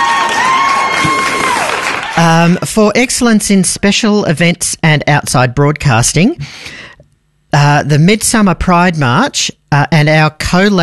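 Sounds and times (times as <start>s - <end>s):
crowd cheering: 0.0s - 2.2s
applause sound effect played from a button: 0.0s - 2.4s
speech: 2.2s - 6.8s, 7.5s - 10.8s.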